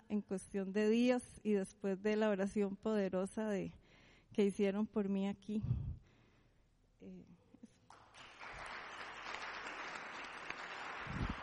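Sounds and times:
speech: 0:00.1 - 0:05.9, 0:07.0 - 0:07.4
audience applause: 0:07.9 - 0:11.4.

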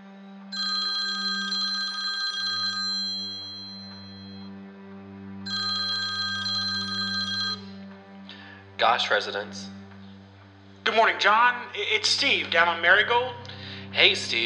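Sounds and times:
low constant hum: 0:00.0 - 0:14.4
telephone ringing in a bright trill: 0:00.5 - 0:04.5, 0:05.5 - 0:07.9
speech: 0:08.8 - 0:09.8, 0:11.0 - 0:14.4.

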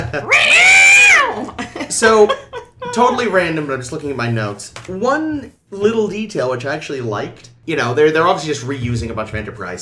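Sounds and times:
speech: 0:00.0 - 0:00.6, 0:01.9 - 0:09.8
fighting cat caterwauling: 0:00.2 - 0:01.5.

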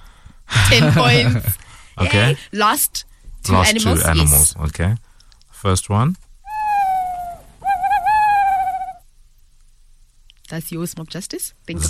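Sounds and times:
speech: 0:00.7 - 0:06.2, 0:10.5 - 0:11.8
owl hooting: 0:06.5 - 0:09.0.

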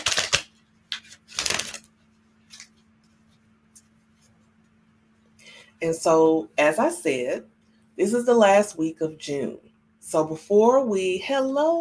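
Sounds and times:
deck of cards being shuffled: 0:00.0 - 0:04.5
faint steady hum: 0:00.0 - 0:11.8
speech: 0:05.8 - 0:11.8.

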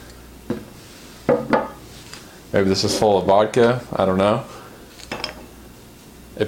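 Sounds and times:
speech: 0:02.5 - 0:04.6
pint glass set down and shifted on a hard surface: 0:05.1 - 0:05.5.

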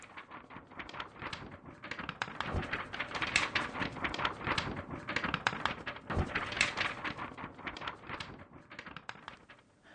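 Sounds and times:
paper crinkling and rustling: 0:00.0 - 0:09.6.

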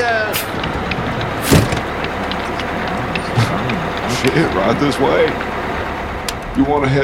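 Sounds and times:
party bus engine idling: 0:00.0 - 0:07.0
heavy bus door thudding shut: 0:01.4 - 0:01.9
laughter: 0:02.2 - 0:05.5
speech: 0:04.2 - 0:05.6, 0:06.6 - 0:07.0.

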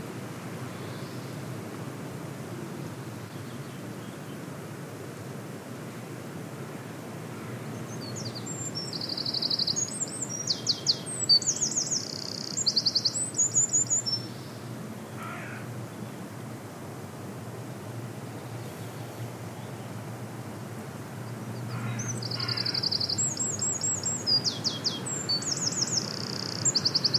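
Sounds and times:
low rumble of wind or surf on a beach in Scotland: 0:00.0 - 0:09.1, 0:13.4 - 0:22.0
faint bird calls: 0:07.3 - 0:15.8, 0:21.6 - 0:27.1
Eurasian wren singing loud, very high, rapid trills and chattering notes: 0:07.9 - 0:14.6, 0:21.6 - 0:27.1.

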